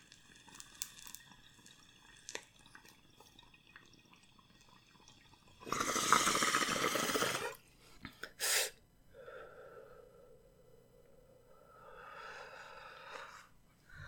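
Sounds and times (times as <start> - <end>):
bong water bubbling during a hit: 0.0 - 7.6.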